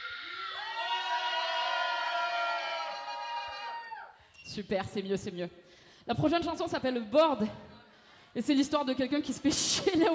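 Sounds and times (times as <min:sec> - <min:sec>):
concert crowd cheering, whooping and shouting: 0:00.0 - 0:04.2
speech: 0:04.5 - 0:07.6, 0:08.4 - 0:10.1.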